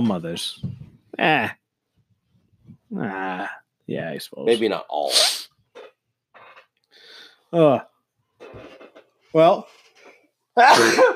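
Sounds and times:
speech: 0.0 - 1.6, 2.9 - 5.5, 7.5 - 7.9, 9.3 - 9.8, 10.6 - 11.1
loud sneeze: 10.6 - 11.1.

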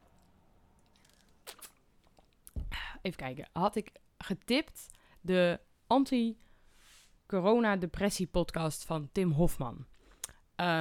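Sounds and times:
quiet sip of water: 0.9 - 2.6
speech: 3.0 - 6.5, 7.3 - 10.0, 10.6 - 10.7.

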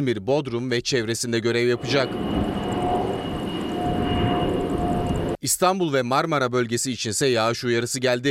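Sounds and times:
speech: 0.0 - 2.6, 5.4 - 8.3
jet-engine firefighting aircraft leased from Russia flying on a trial flight: 1.6 - 5.4.

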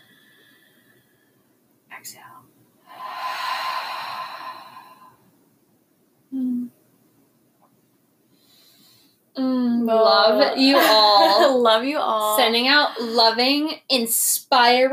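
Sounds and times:
deep breath during a guided breathing exercise: 0.0 - 1.6, 2.8 - 5.3, 8.3 - 9.2
speech: 2.0 - 3.1, 9.9 - 14.9.

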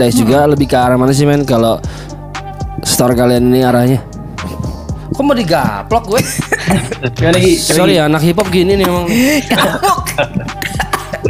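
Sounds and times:
speech: 0.0 - 2.1, 2.8 - 4.1, 5.2 - 11.2
choking cough: 6.2 - 7.5, 8.7 - 11.2
laughter: 6.2 - 7.6, 8.7 - 11.2.

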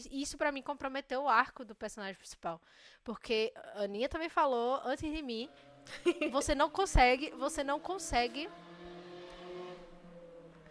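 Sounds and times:
speech: 0.0 - 8.7
car engine humming as the car passes: 5.1 - 10.6.

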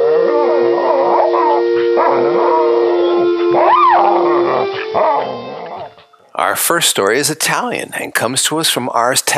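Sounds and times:
dog howling: 0.0 - 6.3
dog yipping: 1.2 - 6.3
speech: 6.6 - 9.3.

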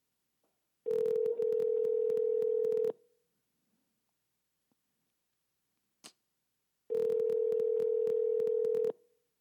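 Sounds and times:
phone call ringback tone: 0.9 - 2.9, 6.9 - 9.0.

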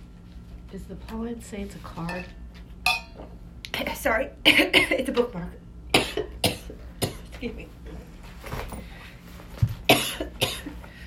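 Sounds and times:
speech: 0.7 - 2.4, 3.8 - 5.6, 7.4 - 7.8
person coughing after choking on something swallowed: 4.5 - 5.1, 5.9 - 7.3, 9.9 - 10.8.

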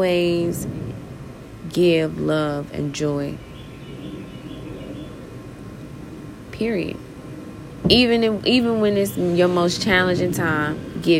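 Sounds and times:
speech: 0.0 - 0.8, 1.7 - 3.5, 6.6 - 7.0, 7.8 - 11.1
steady ambient noise: 0.0 - 11.1
birds chirping outdoors: 2.9 - 11.1.

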